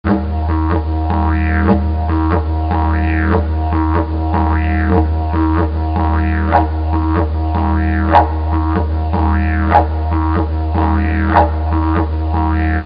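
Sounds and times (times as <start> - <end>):
didgeridoo: 0.0 - 12.8.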